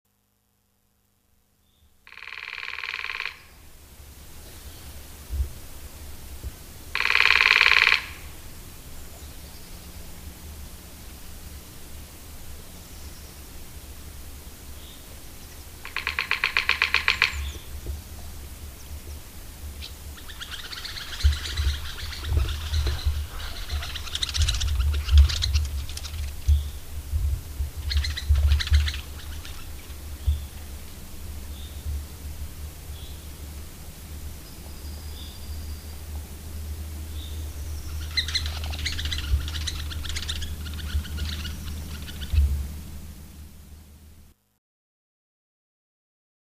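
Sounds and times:
lesser spotted woodpecker drumming: 0:02.1 - 0:03.7, 0:06.9 - 0:08.5, 0:14.8 - 0:43.3.

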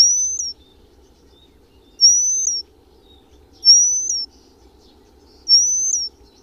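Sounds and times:
Eurasian penduline tit whistled song: 0:00.0 - 0:00.6, 0:01.9 - 0:02.6, 0:03.6 - 0:04.3, 0:05.4 - 0:06.2
faint background hum: 0:00.0 - 0:06.4.

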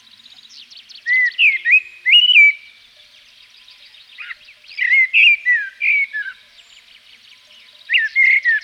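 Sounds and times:
common blackbird whistling song in Provence: 0:00.0 - 0:08.6.

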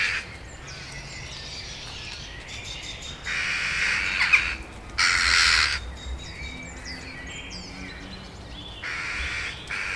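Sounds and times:
Eurasian jackdaw calls: 0:00.0 - 0:01.0, 0:03.1 - 0:05.8, 0:08.8 - 0:09.9.

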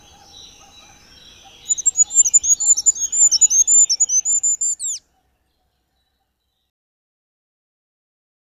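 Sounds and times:
goldcrest singing: 0:00.0 - 0:06.7.

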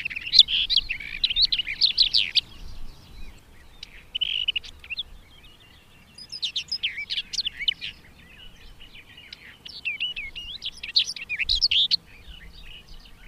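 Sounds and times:
barred warbler singing: 0:00.0 - 0:13.2.

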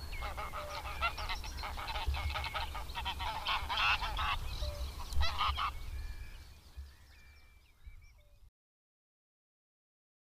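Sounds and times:
greylag geese honking: 0:00.2 - 0:05.9.

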